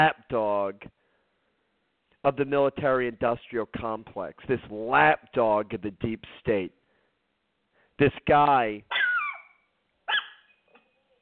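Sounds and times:
speech: 0.0s - 1.0s, 2.2s - 6.8s, 8.0s - 9.0s
dogs barking: 8.9s - 9.5s, 10.1s - 10.5s.

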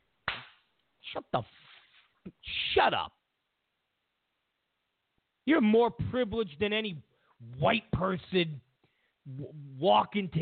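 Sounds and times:
sharp slaps: 0.2s - 0.7s
speech: 1.1s - 3.2s, 5.5s - 8.6s, 9.3s - 10.3s.

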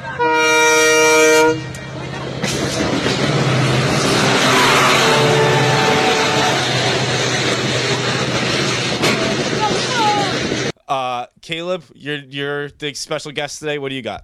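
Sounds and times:
train horn blaring: 0.0s - 2.2s, 3.5s - 7.6s
train roaring past: 0.0s - 10.7s
speech: 11.5s - 14.2s.

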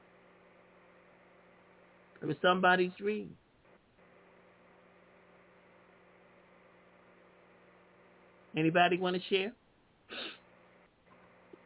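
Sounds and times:
speech: 2.2s - 3.4s, 8.6s - 9.6s
person sneezing: 10.1s - 10.4s.

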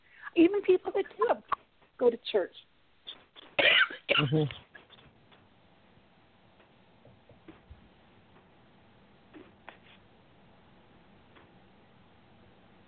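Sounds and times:
speech: 0.4s - 2.7s, 3.6s - 4.6s
person coughing: 3.6s - 4.6s
throat clearing: 3.6s - 4.6s.

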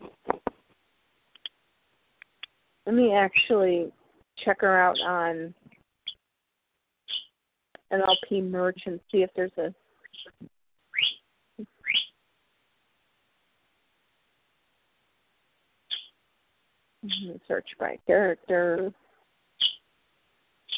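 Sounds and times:
speech: 2.9s - 5.6s, 7.9s - 9.8s, 17.6s - 19.0s
pet bird chirping and whistling: 7.1s - 7.3s, 10.1s - 11.2s, 11.8s - 12.1s, 15.9s - 16.1s, 17.1s - 17.4s, 19.6s - 19.8s.

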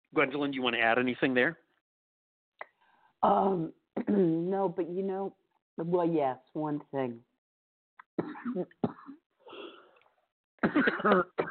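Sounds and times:
speech: 0.1s - 1.6s, 3.2s - 7.3s, 8.2s - 9.0s, 10.6s - 11.4s
woman giving deliberate theatrical stage coughs: 8.2s - 9.8s, 10.6s - 11.4s.

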